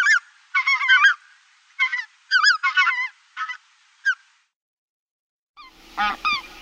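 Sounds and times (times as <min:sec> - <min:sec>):
Lesser white-fronted goose giving high squeaky yelping calls in Uzbekistan: 0:00.0 - 0:01.2, 0:01.8 - 0:04.2, 0:05.6 - 0:06.5.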